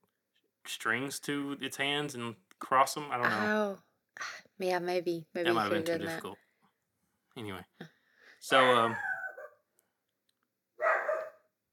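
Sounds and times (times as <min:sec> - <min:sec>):
speech: 0:00.7 - 0:06.4, 0:07.4 - 0:09.1
household dog barking at nothing: 0:10.8 - 0:11.5.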